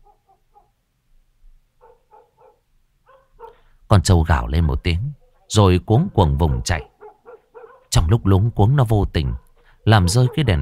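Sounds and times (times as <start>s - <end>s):
dogs barking around village houses: 0.0s - 0.8s, 1.8s - 3.7s, 5.1s - 8.1s, 9.3s - 10.6s
speech: 3.9s - 6.9s, 7.9s - 10.6s.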